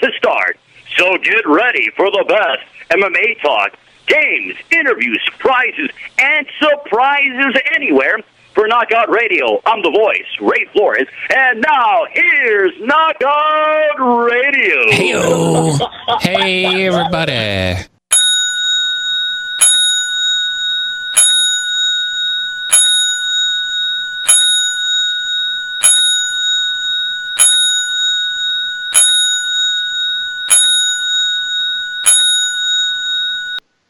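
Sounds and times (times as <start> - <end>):
speech: 0.2 - 17.9
laughter: 14.8 - 17.8
boxing bell ringing a ten-bell salute: 18.1 - 33.6.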